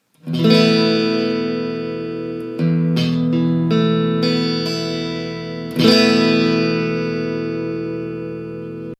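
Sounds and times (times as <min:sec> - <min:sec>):
esus4 guitar chord: 0:00.2 - 0:08.9.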